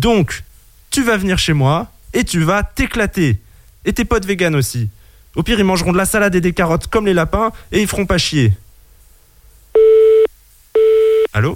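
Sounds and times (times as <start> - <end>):
speech: 0.0 - 8.6, 11.3 - 11.5
telephone busy tone beeps after the caller hung up: 9.8 - 11.3.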